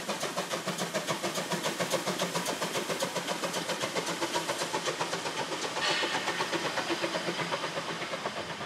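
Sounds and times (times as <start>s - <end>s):
narrow-gauge steam train engine chuffing: 0.0s - 8.6s.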